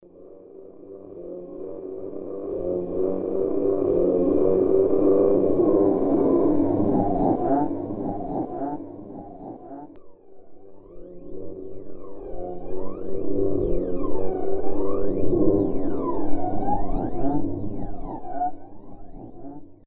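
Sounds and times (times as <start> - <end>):
horror ambiance: 0.0 - 19.8.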